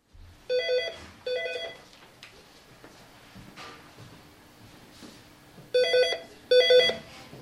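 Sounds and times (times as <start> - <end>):
electronic office phone ringing in a hospital building department office: 0.5 - 1.8, 5.8 - 7.1.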